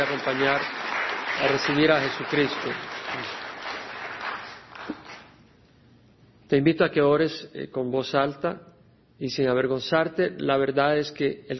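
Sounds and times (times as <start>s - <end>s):
speech: 0.0s - 0.8s, 1.4s - 3.4s, 6.5s - 11.5s
crowd clapping steadily: 0.0s - 5.3s.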